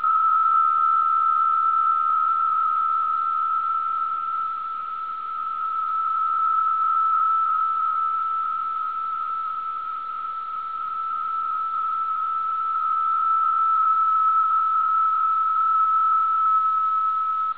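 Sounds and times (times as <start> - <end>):
isolated 75 Bd PSK channel of Israeli VFT: 0.0 - 17.5.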